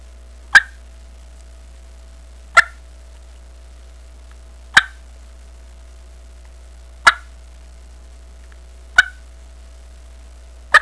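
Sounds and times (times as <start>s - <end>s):
turkey clucking: 2.6s - 2.8s, 7.0s - 7.2s, 9.0s - 9.2s.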